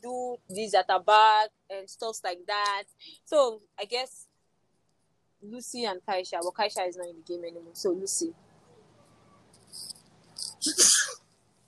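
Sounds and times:
speech: 0.6s - 4.2s, 5.4s - 8.5s, 10.6s - 10.9s
person sneezing: 10.4s - 11.2s.

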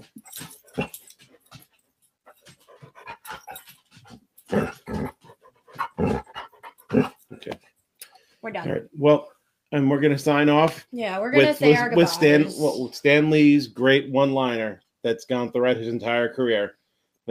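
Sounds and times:
dog panting and whimpering: 0.0s - 7.3s
speech: 8.6s - 17.3s.

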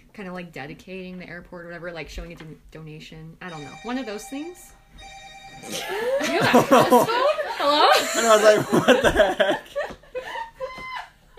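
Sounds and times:
speech: 0.2s - 9.8s
small burner phone ringing with an electronic tone: 3.5s - 7.2s
laughter: 5.7s - 11.3s.

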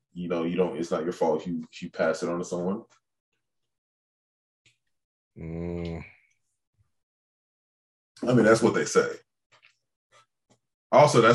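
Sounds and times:
speech: 0.2s - 3.0s, 5.4s - 6.1s, 8.2s - 9.2s, 10.9s - 11.3s
person letting out a long groaning yawn: 5.4s - 6.1s.

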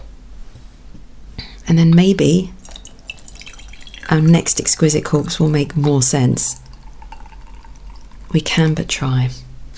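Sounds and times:
speech: 1.7s - 2.6s, 4.1s - 6.6s, 8.3s - 9.4s
spoon stirring green tea clinking against a cup: 2.6s - 4.1s, 6.7s - 8.1s
green tea pouring into a cup: 2.6s - 9.0s.

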